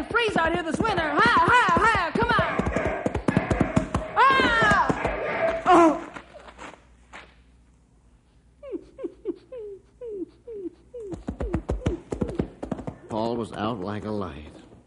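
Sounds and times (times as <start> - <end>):
horse hooves galloping: 0.0 - 5.2, 11.1 - 14.8
speech: 0.2 - 1.6, 13.4 - 14.5.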